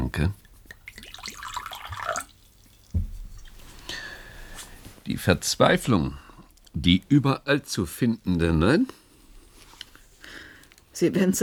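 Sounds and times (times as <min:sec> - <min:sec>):
speech: 0:00.1 - 0:00.4, 0:05.1 - 0:06.2, 0:06.8 - 0:09.0, 0:11.0 - 0:11.4
whisky poured into a glass: 0:00.8 - 0:03.6
brief thud: 0:02.9 - 0:03.3.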